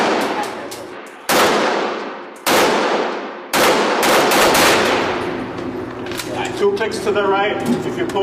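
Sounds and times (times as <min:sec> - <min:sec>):
firearm shots with long ringing tails: 0:00.0 - 0:05.5
firearm full automatic rapid burst: 0:01.3 - 0:05.4
speech: 0:06.7 - 0:08.2.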